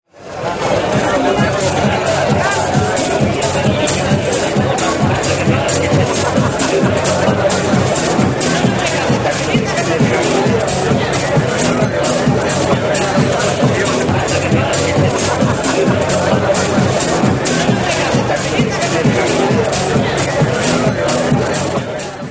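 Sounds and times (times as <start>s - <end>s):
laughter: 0.2s - 22.3s
music in a cocktail bar: 0.2s - 22.3s
people talking in a cocktail bar: 0.2s - 22.3s.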